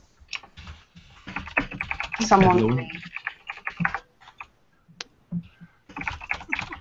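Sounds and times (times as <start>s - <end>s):
fast typing on a computer keyboard: 0.3s - 4.5s, 5.3s - 6.7s
speech: 2.2s - 3.1s.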